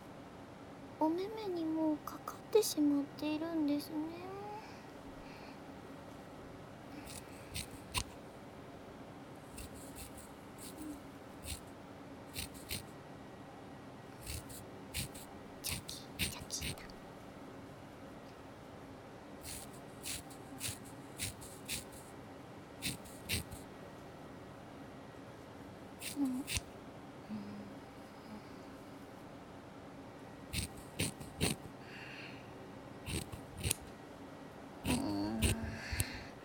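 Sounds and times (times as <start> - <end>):
speech: 1.1 - 4.3
scissors trimming bangs: 7.0 - 8.2, 9.6 - 11.7, 12.3 - 12.9, 14.2 - 16.9, 19.4 - 22.1, 22.8 - 23.6, 26.0 - 26.7, 30.6 - 31.7, 33.1 - 33.9, 34.9 - 36.1.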